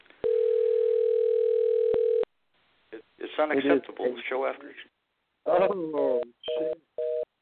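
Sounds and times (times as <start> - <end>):
telephone dial tone: 0.2 - 2.2
speech: 3.4 - 6.8.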